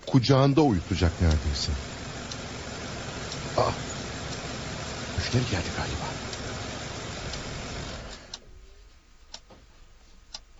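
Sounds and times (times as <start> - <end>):
car engine rumbling: 0.0 - 8.4
sharp clicks: 0.0 - 8.4
speech: 0.2 - 1.9, 3.6 - 3.9, 5.2 - 6.2.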